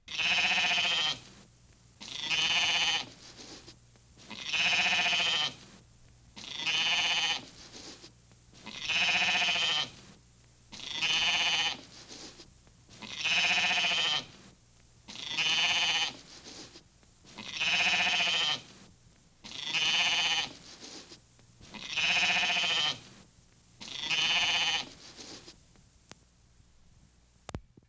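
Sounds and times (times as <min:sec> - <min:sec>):
sheep bleating: 0:00.1 - 0:01.3, 0:02.0 - 0:03.2, 0:04.2 - 0:05.7, 0:06.4 - 0:07.6, 0:08.6 - 0:10.1, 0:10.7 - 0:11.9, 0:12.9 - 0:14.5, 0:15.1 - 0:16.3, 0:17.3 - 0:18.8, 0:19.4 - 0:20.6, 0:21.6 - 0:23.2, 0:23.8 - 0:25.0.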